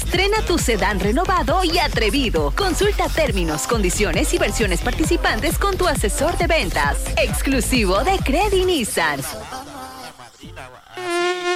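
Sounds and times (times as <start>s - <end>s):
speech: 0.1s - 9.7s
mosquito buzzing: 11.0s - 11.5s.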